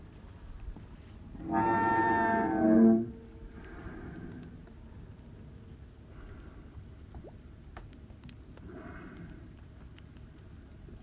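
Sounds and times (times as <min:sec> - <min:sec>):
low underwater noise: 0:01.0 - 0:10.8
humpback whale song unit moan at Kuiu: 0:01.4 - 0:04.4.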